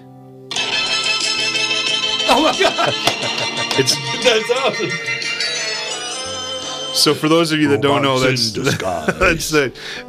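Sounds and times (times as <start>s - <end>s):
phone ringtone playing a bright busy cartoon theme tune: 0.5s - 8.3s
speech: 2.3s - 5.2s, 7.0s - 10.0s
laughter: 2.3s - 5.4s, 7.7s - 9.6s.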